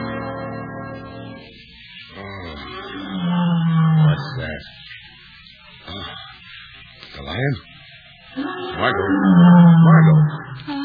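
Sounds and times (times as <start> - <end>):
lion roaring at night: 2.1 - 4.7, 8.4 - 10.7.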